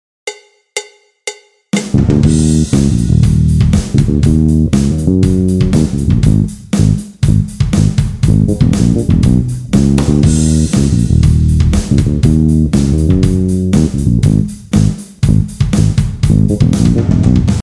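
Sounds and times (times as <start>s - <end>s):
heavy drums: 1.7s - 17.6s.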